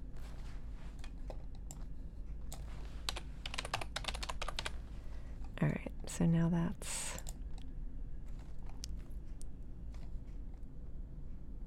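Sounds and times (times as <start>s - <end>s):
low steady hum: 0.0s - 11.6s
computer keyboard typing: 2.5s - 4.8s
speech: 5.6s - 7.0s.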